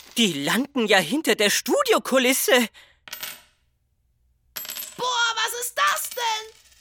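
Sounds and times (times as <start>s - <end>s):
speech: 0.2s - 3.2s
coins dropping: 3.0s - 3.6s, 4.6s - 6.8s.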